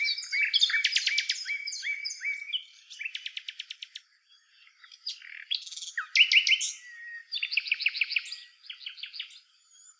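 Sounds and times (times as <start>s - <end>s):
Common nightingale Luscinia megarhynchos singing: 0.0s - 9.9s.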